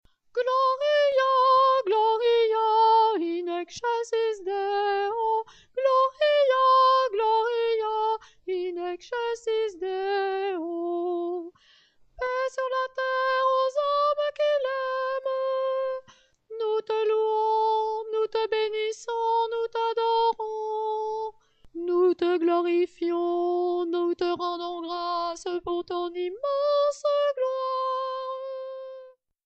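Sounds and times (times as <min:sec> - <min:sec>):
soprano singing a chorale: 0:00.3 - 0:11.6, 0:12.2 - 0:29.2.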